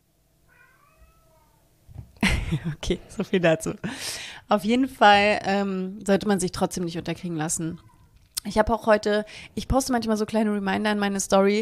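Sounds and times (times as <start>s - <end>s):
cat meowing: 0.5s - 1.7s, 7.8s - 8.2s
speech: 2.5s - 11.6s.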